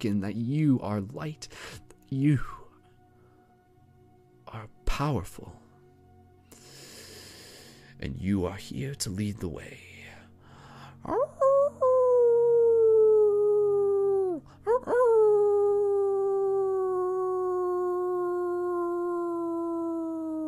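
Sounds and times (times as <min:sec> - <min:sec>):
speech: 0:00.0 - 0:02.6, 0:04.5 - 0:05.6, 0:08.0 - 0:09.8, 0:11.0 - 0:11.4, 0:14.8 - 0:15.1
wolves howling in the distance: 0:11.1 - 0:20.4.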